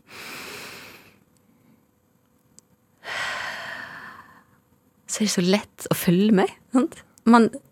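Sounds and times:
slow deep calming breaths: 0:00.0 - 0:01.9, 0:03.0 - 0:04.6
speech: 0:05.2 - 0:07.7.

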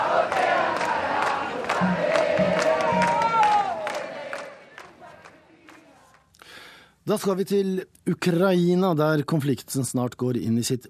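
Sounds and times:
crowd of demonstrators shouting and chanting in front of the presidential palace: 0:00.0 - 0:05.7
sharp rhythmic beats: 0:01.6 - 0:04.5
speech: 0:07.1 - 0:10.8.

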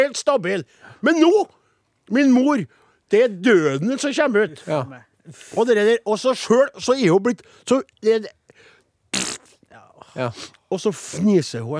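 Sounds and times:
speech: 0:00.0 - 0:08.4, 0:10.2 - 0:11.7
person blowing a raspberry imitating a fart: 0:09.2 - 0:09.6.

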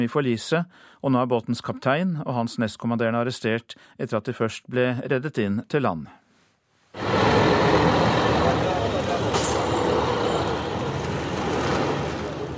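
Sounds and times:
speech: 0:00.0 - 0:06.2
short hiss of bus air brakes: 0:07.0 - 0:11.8
bus engine rumbling as the heavy vehicle pulls away: 0:07.0 - 0:12.5.

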